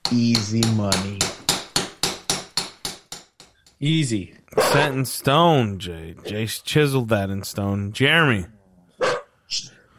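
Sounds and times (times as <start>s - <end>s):
speech: 0.1s - 1.3s, 3.8s - 8.6s
dog barking: 4.6s - 4.9s, 9.0s - 9.3s.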